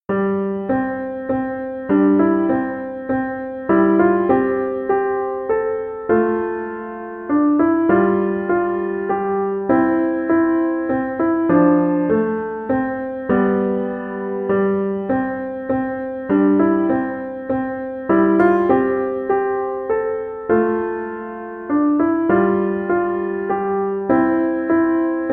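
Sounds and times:
carol played on piano: 0:00.1 - 0:25.3.

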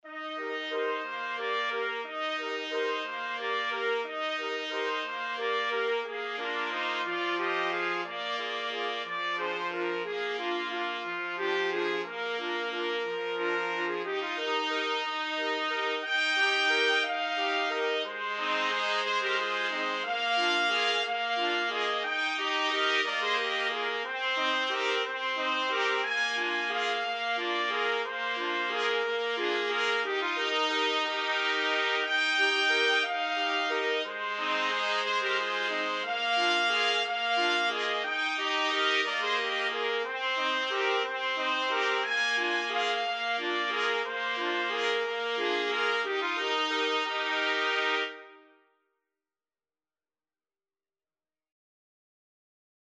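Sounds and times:
trumpet quartet playing: 0:00.1 - 0:48.4.

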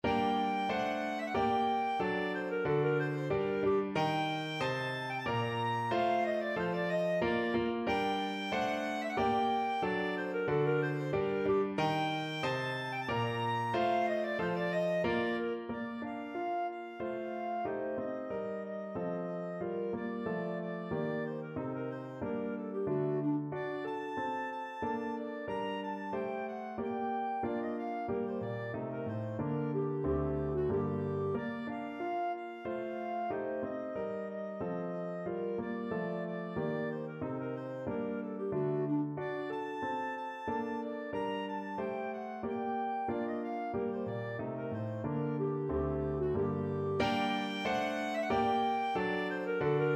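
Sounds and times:
clarinet: 0:00.0 - 0:49.9.

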